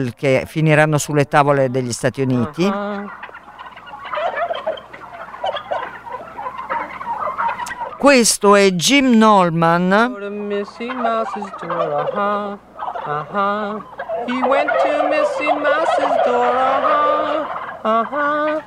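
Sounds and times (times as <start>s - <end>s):
speech: 0.0s - 3.3s, 8.0s - 18.6s
flock of turkeys gobbling: 0.8s - 18.6s.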